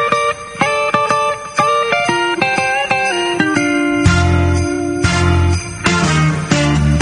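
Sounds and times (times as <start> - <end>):
bright ringing bell-like notes in Christmas rock song intro: 0.0 - 6.9
full rock band with heavy bass: 4.0 - 6.9.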